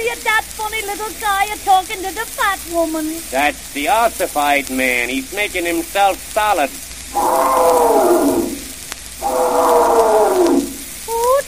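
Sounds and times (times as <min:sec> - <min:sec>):
speech: 0:00.0 - 0:08.2
elephant trumpeting: 0:07.1 - 0:10.8.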